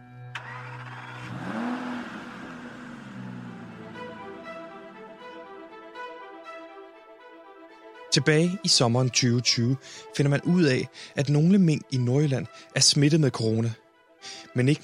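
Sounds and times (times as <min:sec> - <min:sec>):
car engine revving and speeding away: 0:00.3 - 0:05.7
speech: 0:08.2 - 0:14.8.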